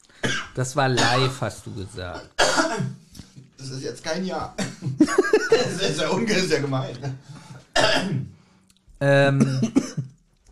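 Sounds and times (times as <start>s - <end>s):
person coughing: 0.2s - 1.4s, 2.4s - 3.0s, 4.6s - 6.2s, 7.8s - 8.3s, 9.3s - 10.1s
speech: 0.6s - 2.9s, 3.6s - 8.2s, 9.0s - 10.1s
laughter: 4.6s - 7.2s.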